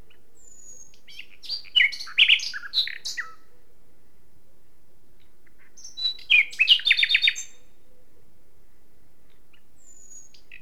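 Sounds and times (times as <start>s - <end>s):
Common nightingale singing: 0.0s - 3.6s, 5.2s - 8.2s, 9.3s - 10.6s.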